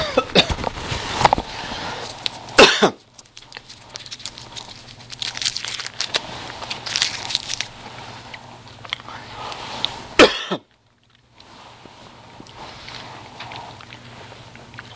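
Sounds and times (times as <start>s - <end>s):
cough-like burst: 0.0s - 0.6s, 2.6s - 3.0s, 10.2s - 10.7s
crinkly plastic cough drop wrapper rustling and crackling: 0.5s - 7.9s.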